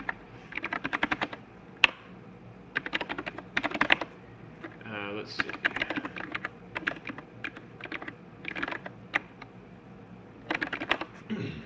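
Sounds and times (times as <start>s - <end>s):
typing a host name on a computer keyboard: 0.0s - 2.0s, 2.8s - 4.8s, 5.4s - 9.5s, 10.4s - 11.1s
speech: 5.3s - 5.7s.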